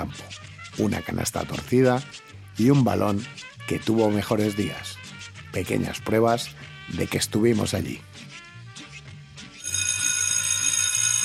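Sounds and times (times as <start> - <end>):
speech: 0.0 - 8.2
electric school bell ringing: 9.6 - 11.2.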